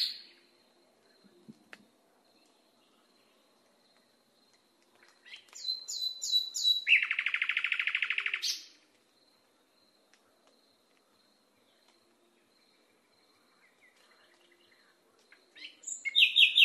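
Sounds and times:
nightingale song with whistled notes and rapid trill: 5.3 - 8.6, 15.6 - 16.6.

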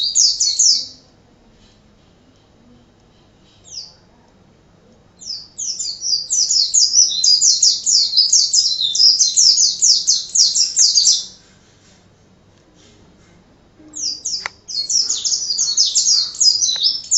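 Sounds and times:
white-eye excited high-pitched twittering song: 5.2 - 11.4, 14.0 - 17.1.

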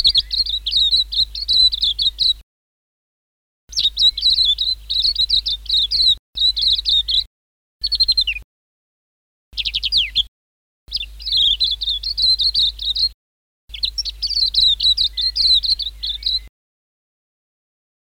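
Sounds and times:
white-eye giving high twittering phrases and falling trills: 0.0 - 2.4, 3.7 - 8.4, 9.6 - 10.3, 10.9 - 16.5.

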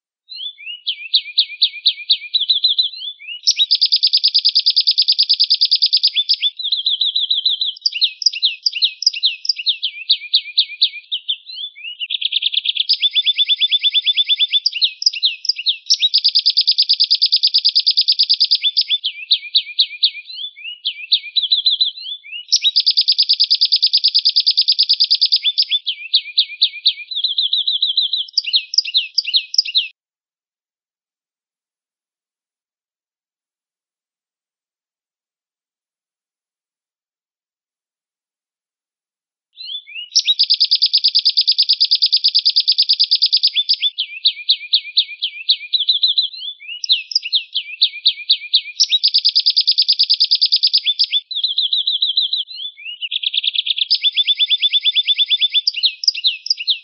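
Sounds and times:
family of canaries: 0.4 - 29.9, 39.6 - 56.8.

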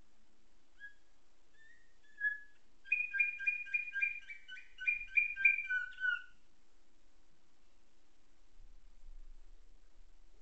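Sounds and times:
canary tutored with nightingale song singing: 1.6 - 6.4.

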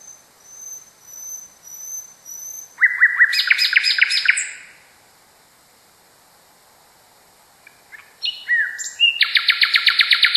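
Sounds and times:
common nightingale song: 0.0 - 4.8, 7.6 - 10.3.

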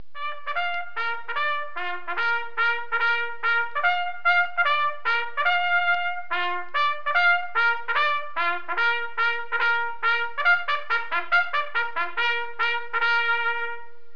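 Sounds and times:
music: 0.0 - 14.1.

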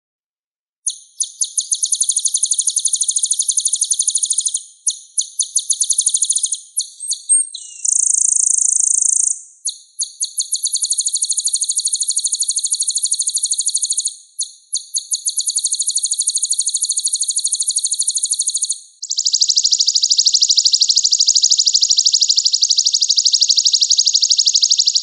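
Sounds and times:
sunbird song: 0.8 - 25.0.

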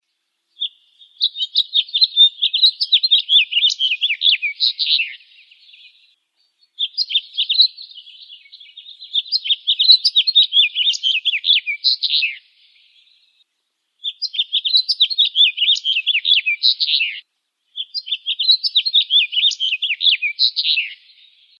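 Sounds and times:
house finch: 0.6 - 6.0, 6.8 - 12.4, 14.0 - 17.2, 17.8 - 21.0.

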